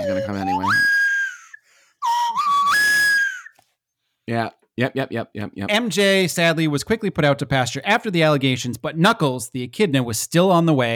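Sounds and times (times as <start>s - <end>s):
slide whistle: 0.0s - 3.6s
speech: 0.3s - 0.8s, 4.3s - 10.9s.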